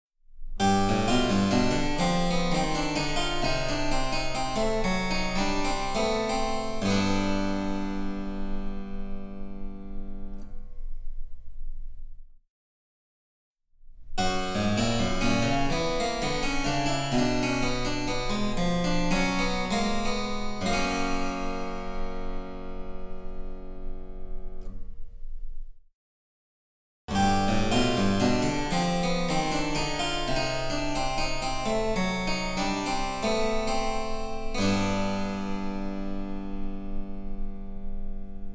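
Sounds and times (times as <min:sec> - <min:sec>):
harpsichord: 0:00.6 - 0:10.3, 0:14.2 - 0:23.9, 0:27.1 - 0:38.5.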